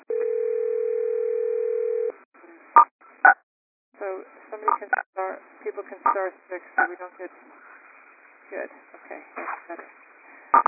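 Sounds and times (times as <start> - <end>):
steady electronic telephone line tone: 0.1 - 2.1
speech: 4.8 - 7.8, 8.5 - 10.6.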